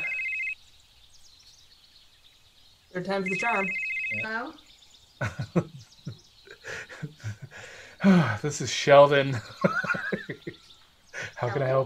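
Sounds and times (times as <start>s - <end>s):
phone ringing with a bright electronic trill: 0.0s - 0.6s, 3.2s - 4.5s
speech: 3.0s - 10.6s, 11.4s - 11.8s
laughter: 5.2s - 8.5s, 9.2s - 10.6s.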